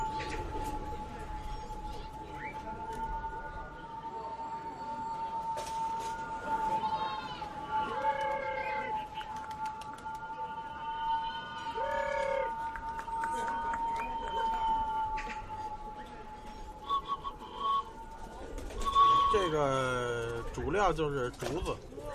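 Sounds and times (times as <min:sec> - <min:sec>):
released pigeons flying with bamboo tail whistles tied with string: 0:00.0 - 0:20.7
faint outdoor noise: 0:00.0 - 0:22.1.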